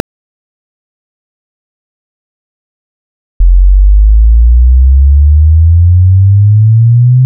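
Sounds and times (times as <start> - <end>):
test tones: 3.4 - 7.1.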